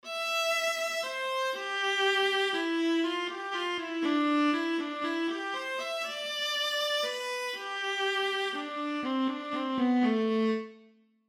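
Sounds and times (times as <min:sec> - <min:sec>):
viola playing in alto clef example: 0:00.0 - 0:10.8.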